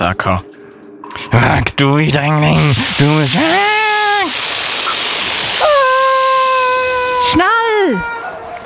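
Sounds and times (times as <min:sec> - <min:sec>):
speech: 0:00.0 - 0:00.5, 0:01.3 - 0:03.7, 0:07.3 - 0:08.1
loud steady rushing water torrent: 0:02.5 - 0:08.6
person crying out: 0:05.6 - 0:08.0.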